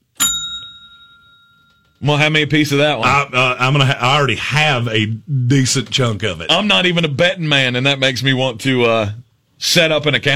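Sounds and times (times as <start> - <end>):
bell ding: 0.0 - 2.0
speech: 2.0 - 10.3.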